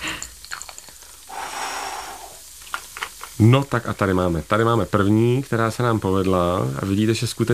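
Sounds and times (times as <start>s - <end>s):
breath blown through a soap bubble wand: 1.3s - 2.5s
speech: 3.4s - 7.5s.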